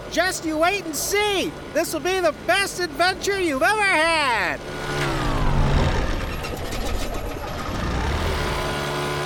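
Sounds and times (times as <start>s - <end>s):
speech: 0.2s - 5.0s
propeller engine of an old bush plane in flight sputtering: 4.6s - 9.2s.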